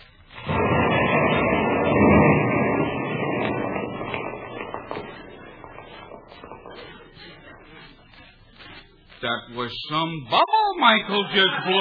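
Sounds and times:
dense heavy rumble: 0:00.0 - 0:08.8
faint crackles: 0:00.0 - 0:10.3
small explosive blast blowing open a safe: 0:00.1 - 0:09.1
laughter: 0:06.9 - 0:09.0, 0:10.7 - 0:11.8
speech: 0:09.6 - 0:11.8.

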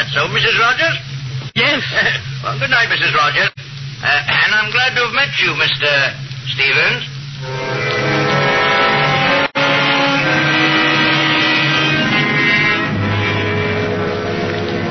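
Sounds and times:
speech: 0:00.1 - 0:07.6
car engine drone while driving: 0:07.4 - 0:14.8.

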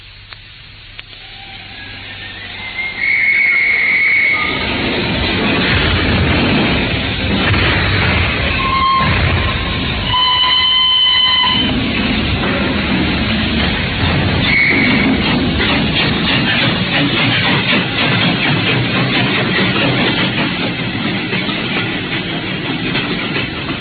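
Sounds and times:
steam train pulling away rumbling and clattering: 0:00.0 - 0:23.7
shrill steam train whistle blasts: 0:01.1 - 0:04.7, 0:08.5 - 0:11.7, 0:14.4 - 0:15.0.

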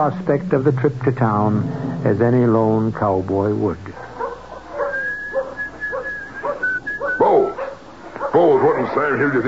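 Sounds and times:
speech: 0:00.0 - 0:04.1, 0:09.0 - 0:09.4
man softly whistling a light meandering tune to himself: 0:04.9 - 0:07.4.

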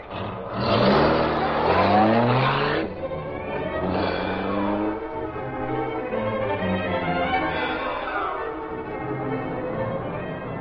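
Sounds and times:
car engine accelerating through the gears: 0:00.0 - 0:10.5.

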